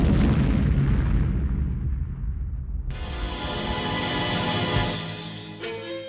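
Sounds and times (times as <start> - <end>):
loud hand grenade explosion: 0.0 - 5.3
sustained roaring hiss of debris and fire: 2.9 - 5.4.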